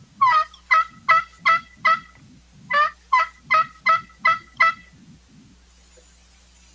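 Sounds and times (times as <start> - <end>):
faint low pulsing: 0.0 - 6.7
turkey hen yelps imitated on a tube call: 0.2 - 4.9.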